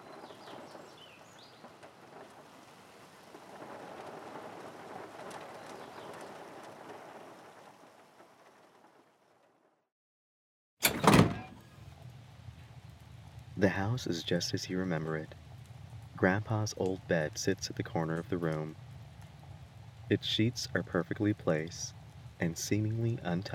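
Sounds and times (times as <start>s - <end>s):
steady rain falling on a farm: 0.0s - 9.7s, 11.6s - 23.5s
speech: 13.6s - 15.4s, 16.2s - 18.8s, 20.1s - 23.5s.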